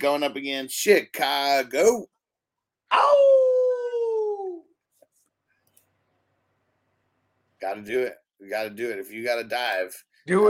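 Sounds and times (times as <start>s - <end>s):
speech: 0.0s - 2.2s, 2.9s - 3.5s, 7.6s - 10.4s
person imitating a wolf howl: 2.9s - 4.7s.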